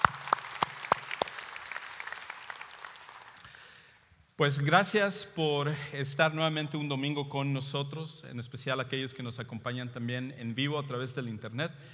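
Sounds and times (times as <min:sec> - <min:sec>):
audience applauding: 0:00.0 - 0:03.7
speech: 0:04.4 - 0:11.9.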